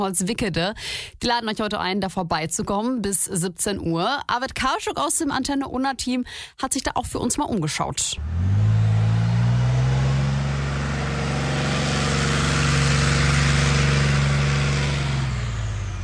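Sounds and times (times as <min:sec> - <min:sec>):
speech: 0:00.0 - 0:08.6
armoured recovery tank diesel engine roaring during military demonstration in Holzwickede: 0:08.2 - 0:16.0.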